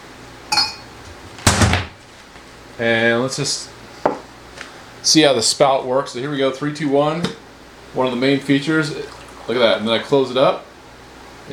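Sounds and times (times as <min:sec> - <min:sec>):
coffee cup clinking as it is set down: 0:00.5 - 0:00.9
speech: 0:02.8 - 0:03.8, 0:05.0 - 0:10.7.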